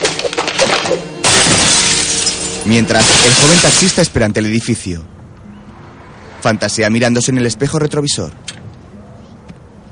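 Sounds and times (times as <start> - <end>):
window pane smashed with a chair: 0.0 - 4.2
speech: 2.7 - 5.2, 6.4 - 8.6.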